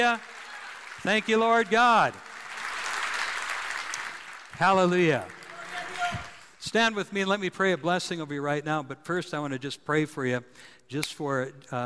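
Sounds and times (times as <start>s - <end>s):
speech: 0.0s - 0.3s, 1.0s - 2.3s, 4.6s - 5.4s, 6.6s - 11.8s
crowd applauding: 0.0s - 6.7s.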